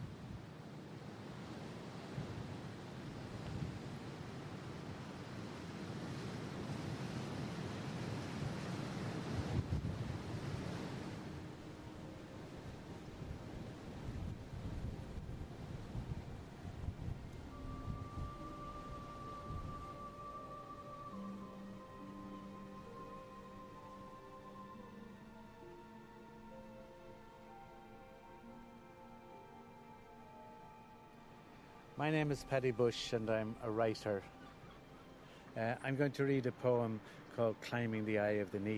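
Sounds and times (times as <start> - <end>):
strong wind roaring: 0.0 - 21.2
ocean surf crashing and washing: 0.0 - 23.1, 31.6 - 38.7
speech: 32.0 - 34.4, 35.6 - 38.7.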